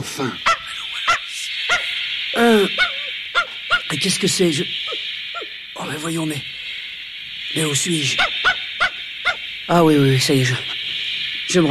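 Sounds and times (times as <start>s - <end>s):
speech: 0.0s - 0.6s, 2.3s - 3.0s, 3.9s - 4.9s, 5.8s - 6.5s, 7.5s - 8.4s, 9.7s - 10.8s
steady hiss: 0.0s - 11.6s
dog barking and yelping aboard a lunar rocket: 2.8s - 3.9s, 8.2s - 9.4s.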